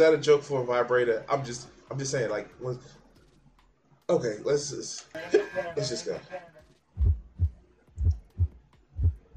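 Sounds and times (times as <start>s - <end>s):
speech: 0.0s - 3.0s, 4.1s - 6.6s
laughter: 5.1s - 6.8s
soft low heartbeat: 6.9s - 9.3s.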